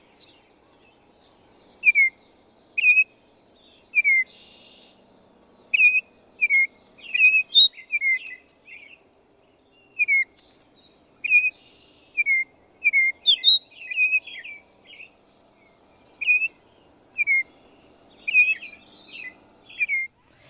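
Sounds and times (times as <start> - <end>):
Baltimore Oriole singing flute-like whistles: 1.8 - 2.2, 2.8 - 3.1, 3.9 - 4.8, 5.7 - 8.4, 9.9 - 10.4, 11.2 - 15.1, 16.2 - 20.2.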